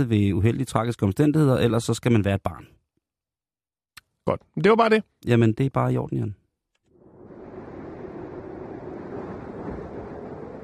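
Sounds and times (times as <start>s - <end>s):
speech: 0.0s - 2.8s, 4.2s - 6.4s
broadband rushing wind with a low rumbling undertone: 7.0s - 10.6s.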